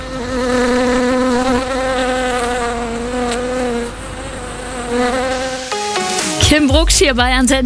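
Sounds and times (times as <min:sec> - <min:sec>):
bees buzzing in a garden: 0:00.0 - 0:06.8
speech: 0:06.5 - 0:07.6.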